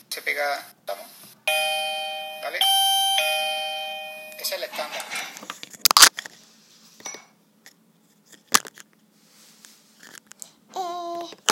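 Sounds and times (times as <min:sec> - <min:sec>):
speech: 0:00.4 - 0:01.1
stick-on electronic doorbell chiming: 0:01.5 - 0:04.7
young child babbling: 0:10.7 - 0:11.4.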